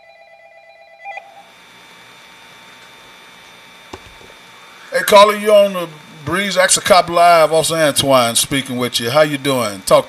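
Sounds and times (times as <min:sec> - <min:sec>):
pulsed electronic incoming telephone call beep: 0:01.0 - 0:01.5
steady low hum: 0:01.1 - 0:10.0
speech: 0:04.9 - 0:10.0.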